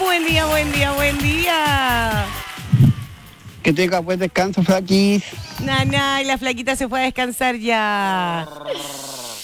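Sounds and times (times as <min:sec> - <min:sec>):
speech: 0:00.2 - 0:02.5, 0:03.6 - 0:09.2
horse neighing in a shrill whinny: 0:02.0 - 0:06.4.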